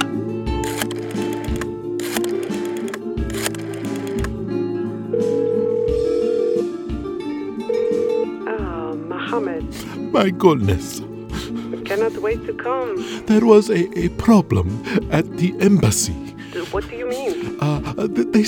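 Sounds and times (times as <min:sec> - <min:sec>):
low sustained musical backdrop: 0:00.0 - 0:18.4
plastic clicks and clatters of a phone handset being lifted: 0:00.8 - 0:04.4
speech: 0:10.2 - 0:11.1, 0:11.9 - 0:18.4.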